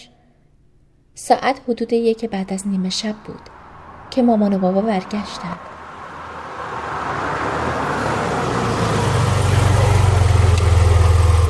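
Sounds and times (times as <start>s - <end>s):
speech: 1.3s - 3.6s, 4.2s - 5.7s
car engine idling: 5.0s - 11.4s.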